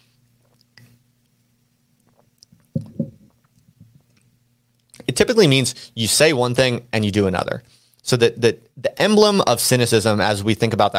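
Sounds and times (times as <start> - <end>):
low steady hum: 0.0 - 10.9
slurping and gulping water: 2.0 - 3.7
person sipping and swallowing water: 2.0 - 4.3
speech: 5.1 - 10.9.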